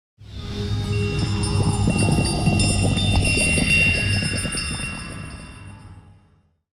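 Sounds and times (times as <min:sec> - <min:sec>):
magical stone sound: 0:01.0 - 0:05.8.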